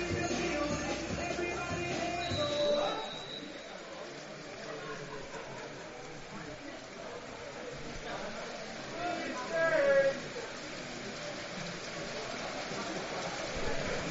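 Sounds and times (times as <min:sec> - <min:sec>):
faint indistinct voices: 0:00.0 - 0:14.0
rain drumming on a steel roof during an American football game in Marburg: 0:00.0 - 0:14.0.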